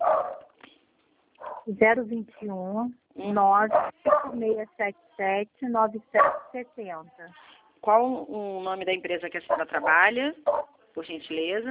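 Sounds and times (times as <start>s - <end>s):
dog barking and yelping: 0.0s - 0.6s, 1.4s - 1.7s, 3.7s - 4.4s, 6.2s - 6.6s, 9.5s - 10.8s
speech: 1.7s - 11.6s.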